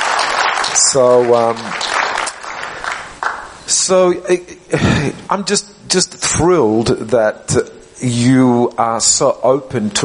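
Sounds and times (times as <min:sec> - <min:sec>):
crowd applause: 0:00.0 - 0:03.5
speech: 0:00.9 - 0:01.9, 0:03.7 - 0:10.0.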